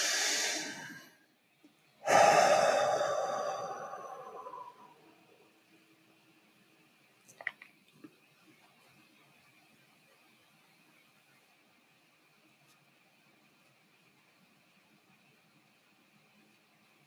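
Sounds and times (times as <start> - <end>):
deep breath in and out: 0.0 - 1.2, 2.0 - 5.3.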